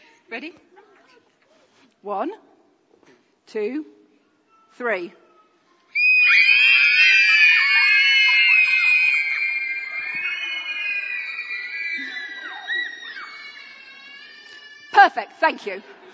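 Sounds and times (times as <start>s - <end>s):
speech: 0.3s - 1.2s, 2.0s - 2.5s, 3.5s - 4.0s, 4.8s - 5.2s, 15.0s - 16.0s
crowd of children screaming in a church: 6.0s - 15.0s.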